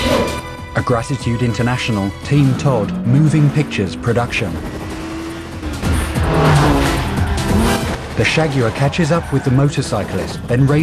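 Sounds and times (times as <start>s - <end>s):
car engine roaring during a film chase scene: 0.0s - 10.8s
car tires squealing and skidding during a film chase scene: 0.0s - 10.8s
speech: 0.8s - 4.8s, 8.2s - 10.8s.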